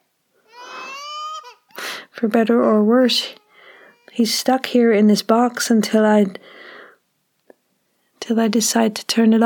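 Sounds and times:
baby crying: 0.4 - 2.0, 3.1 - 4.6
speech: 2.2 - 3.4, 4.2 - 6.6, 8.3 - 9.4.

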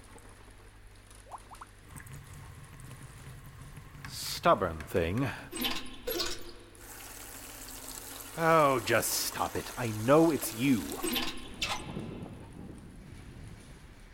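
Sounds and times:
low hum: 0.0 - 14.1
speech: 4.4 - 5.7, 8.4 - 11.4
leaky faucet sputtering and trickling: 5.5 - 11.6.

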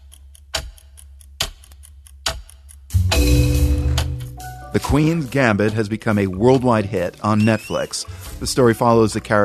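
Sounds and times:
sharper chess clock clicks: 0.0 - 6.7
chess clock ticking: 0.0 - 7.8
speech: 4.8 - 9.4.

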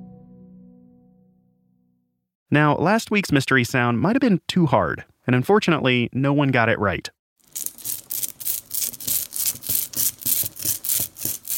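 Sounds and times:
speech: 2.5 - 8.0
rubber brayer rolling ink onto an inking plate for printmaking: 7.5 - 11.5.

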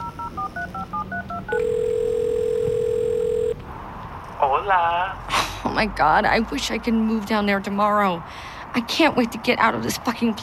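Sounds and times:
phone touch-tone dialing beeps: 0.0 - 3.6
speech: 4.6 - 10.4.

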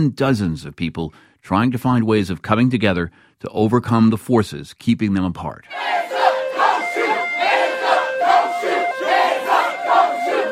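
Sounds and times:
speech: 0.0 - 6.2
protest crowd chanting in Charlotte North Carolina after a police shooting: 5.7 - 10.4.

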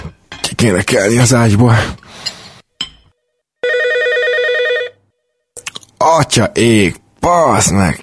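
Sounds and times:
speech: 0.6 - 2.0, 6.0 - 8.0
telephone ringing with an electronic tone: 3.6 - 5.2.

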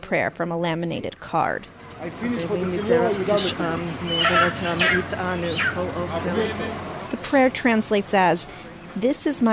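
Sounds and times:
several people talking indistinctly: 0.0 - 9.5
speech: 0.1 - 9.5
chicken clucking and squawking while swung during a prayer ritual: 2.7 - 5.8.

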